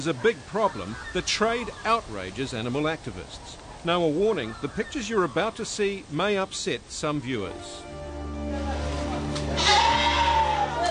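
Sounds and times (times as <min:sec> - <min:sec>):
speech: 0:00.0 - 0:08.6
Awassi sheep bleating: 0:09.5 - 0:10.8.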